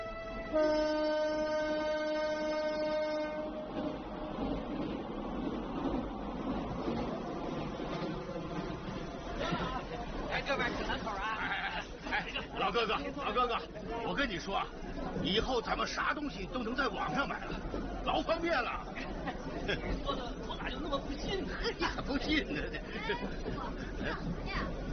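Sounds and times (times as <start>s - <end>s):
passenger train multi-tone horn blast: 0.0s - 3.7s
passenger train wheels rumbling and clattering on the track: 0.0s - 24.9s
speech: 0.5s - 1.2s, 12.7s - 18.8s, 19.7s - 24.8s
laughter: 9.4s - 13.9s, 18.9s - 24.1s.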